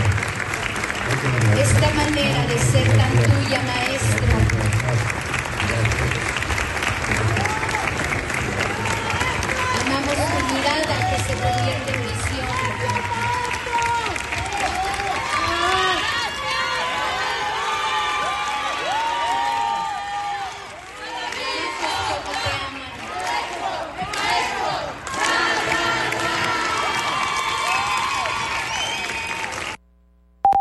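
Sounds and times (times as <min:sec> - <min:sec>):
theater audience applauding in Irapuato: 0:00.0 - 0:29.8
speech: 0:01.2 - 0:06.4
theater audience in Irapuato shouting and whooping: 0:07.2 - 0:11.1, 0:12.3 - 0:22.2, 0:25.3 - 0:29.7.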